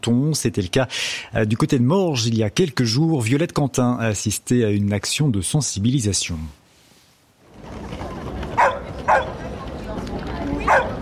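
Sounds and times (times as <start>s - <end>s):
speech: 0.0s - 6.6s
crowd bustle at an outdoor market: 7.5s - 10.9s
voices: 7.6s - 10.9s
dog barking at an outdoor market: 8.6s - 9.4s, 10.6s - 10.9s.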